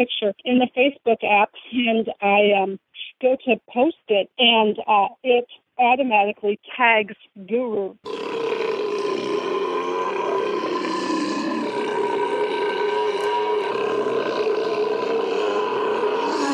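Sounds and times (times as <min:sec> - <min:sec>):
speech: 0:00.0 - 0:08.7
loud burp: 0:08.0 - 0:16.5.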